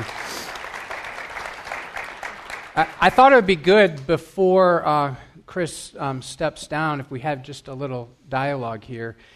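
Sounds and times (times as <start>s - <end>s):
crowd applauding: 0.0s - 3.4s
speech: 2.8s - 9.3s.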